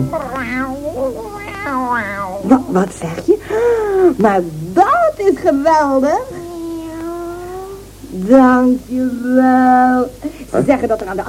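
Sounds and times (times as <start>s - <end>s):
cat meowing: 0.0s - 2.8s, 6.2s - 7.9s
speech: 1.7s - 6.4s, 8.1s - 11.2s.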